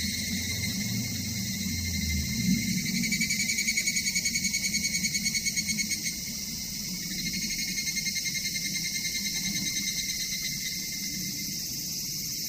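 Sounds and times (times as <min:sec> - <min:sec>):
evening cicada higurashi song: 0:00.0 - 0:12.4
low rumbling background noise: 0:00.0 - 0:12.4.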